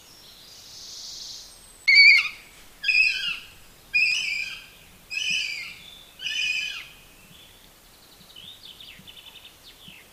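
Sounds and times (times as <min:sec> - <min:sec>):
northern goshawk wailing calls: 0:01.9 - 0:07.0.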